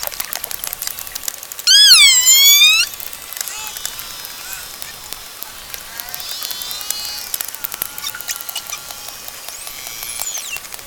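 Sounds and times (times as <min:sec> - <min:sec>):
pilot whale steady rapid clicking: 0:00.0 - 0:10.8
pilot whale harmonic and wavering whistles: 0:01.7 - 0:05.0, 0:05.9 - 0:10.7.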